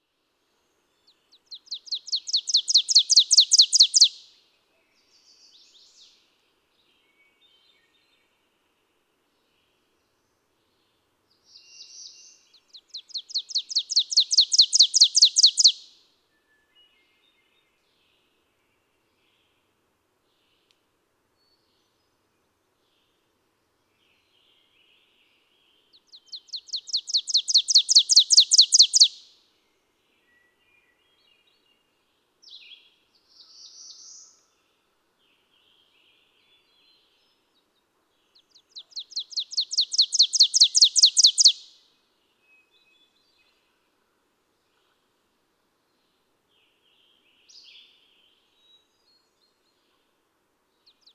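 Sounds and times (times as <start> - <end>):
ovenbird call: 1.8 - 4.2, 13.2 - 15.8, 26.4 - 29.2, 38.8 - 41.6.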